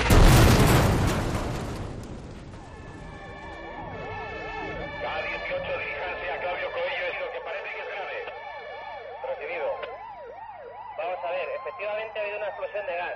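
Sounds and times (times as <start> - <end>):
huge gas explosion on calle Claudio Coello in Madrid: 0.0 - 3.8
emergency sirens wailing: 2.1 - 13.1.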